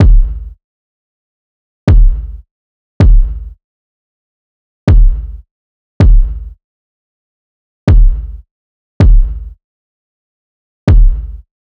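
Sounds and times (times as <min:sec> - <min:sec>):
kick drum loop: 0:00.0 - 0:00.5, 0:01.9 - 0:02.4, 0:03.0 - 0:03.5, 0:04.9 - 0:05.4, 0:06.0 - 0:06.5, 0:07.9 - 0:08.4, 0:09.0 - 0:09.5, 0:10.9 - 0:11.4.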